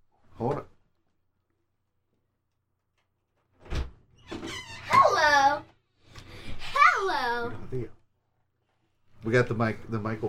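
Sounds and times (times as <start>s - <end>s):
speech: 0.4s - 0.7s, 9.3s - 10.2s
door being opened: 3.6s - 5.4s.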